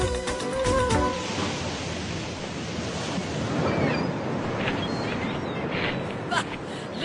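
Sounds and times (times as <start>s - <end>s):
sea waves washing onto a beach of the northern sea: 0.2s - 7.0s.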